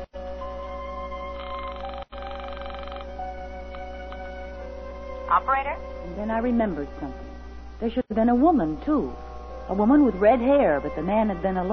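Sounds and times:
buzzy telephone ring on the line after dialing: 0:01.2 - 0:04.3
speech: 0:05.3 - 0:11.7.

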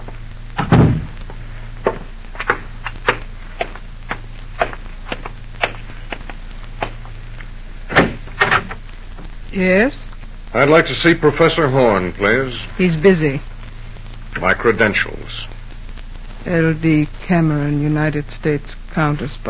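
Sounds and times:
door thudding shut: 0:00.6 - 0:01.1, 0:07.9 - 0:08.7
solid thump: 0:00.6 - 0:01.1
speech: 0:09.6 - 0:13.5, 0:14.4 - 0:15.5, 0:16.5 - 0:19.4.

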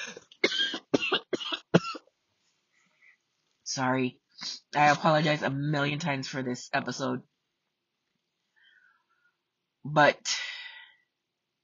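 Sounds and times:
harsh coughs: 0:00.0 - 0:02.0
speech: 0:03.7 - 0:07.3, 0:09.9 - 0:10.3.

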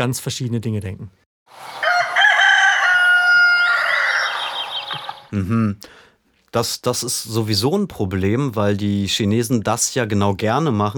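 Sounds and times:
speech: 0:00.0 - 0:01.7, 0:05.3 - 0:10.9
rooster crowing: 0:01.6 - 0:05.3.

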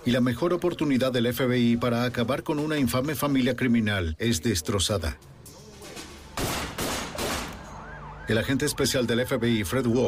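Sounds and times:
speech: 0:00.0 - 0:05.3, 0:08.3 - 0:10.0
gunfire bursts from mafia hitmen shooting in South Philadelphia: 0:06.4 - 0:07.6.

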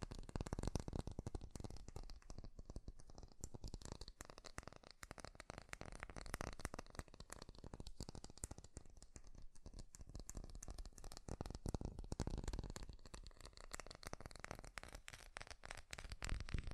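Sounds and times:
rapid crisp taps on a hard surface: 0:00.0 - 0:16.7.

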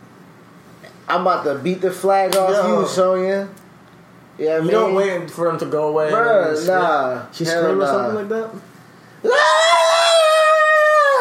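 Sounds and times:
speech: 0:01.1 - 0:03.6, 0:04.4 - 0:09.4
woman screaming: 0:09.2 - 0:11.1.

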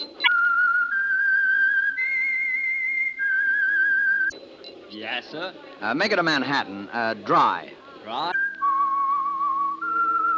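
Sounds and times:
person whistling a slow melody: 0:00.0 - 0:04.4, 0:08.4 - 0:10.3
speech: 0:04.9 - 0:08.3.

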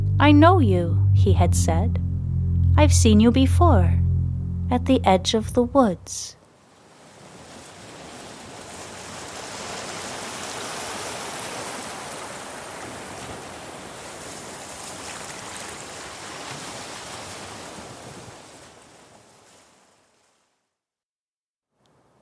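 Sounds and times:
speech: 0:00.2 - 0:02.1, 0:02.8 - 0:04.0, 0:04.7 - 0:06.4
ocean waves breaking on a beach: 0:06.6 - 0:20.5.

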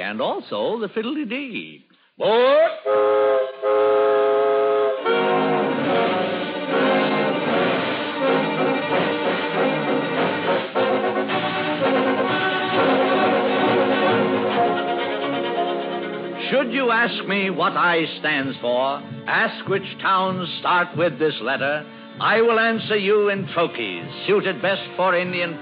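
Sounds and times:
speech: 0:00.0 - 0:03.8, 0:16.7 - 0:25.6
loud sustained steam train whistle blowing: 0:02.5 - 0:16.1
steam train engine pulling away: 0:02.9 - 0:25.6.

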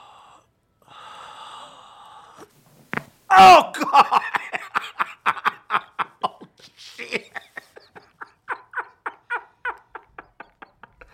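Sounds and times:
deep breath blown out during a thoracic spine check: 0:00.0 - 0:02.6
speech: 0:03.4 - 0:04.3
laughter: 0:03.8 - 0:11.1.

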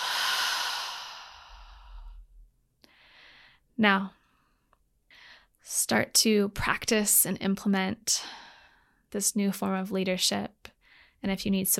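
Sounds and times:
deep breath exhaled through an open mouth: 0:00.0 - 0:02.2
speech: 0:03.8 - 0:04.2, 0:05.7 - 0:08.4, 0:09.1 - 0:10.6, 0:11.2 - 0:11.7.

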